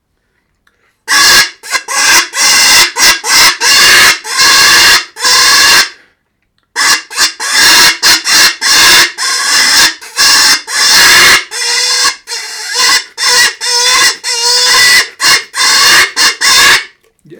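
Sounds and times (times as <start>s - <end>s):
piercing pig-like squeals blown from a telescopic tube call: 1.1s - 6.0s, 6.8s - 17.0s.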